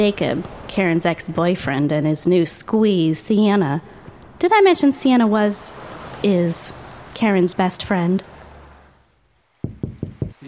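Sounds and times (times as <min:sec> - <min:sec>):
speech: 0:00.0 - 0:08.3
firm knocking on a door: 0:09.6 - 0:10.4.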